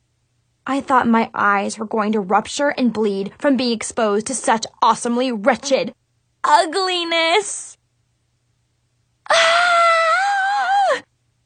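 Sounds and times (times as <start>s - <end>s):
speech: 0.7s - 7.8s
person screaming: 9.3s - 11.0s.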